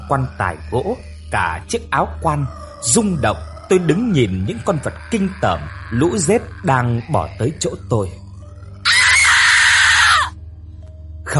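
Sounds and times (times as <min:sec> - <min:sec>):
speech: 0:00.1 - 0:08.2
girl screaming in a nightmare: 0:08.9 - 0:10.4.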